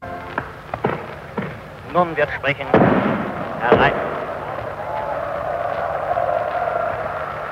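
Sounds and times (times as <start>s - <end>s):
firecrackers banging: 0.0s - 7.5s
man announcing: 1.9s - 2.8s, 3.6s - 4.0s
speech: 2.0s - 4.1s.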